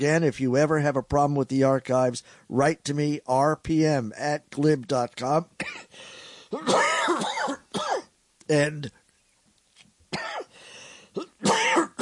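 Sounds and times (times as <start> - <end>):
speech: 0.0 - 7.2, 8.5 - 9.0
man clearing his throat: 5.6 - 5.9, 6.5 - 8.1, 10.2 - 10.5, 11.2 - 12.0
man coughing: 5.6 - 5.9, 6.5 - 8.1, 10.1 - 10.5, 11.1 - 12.0.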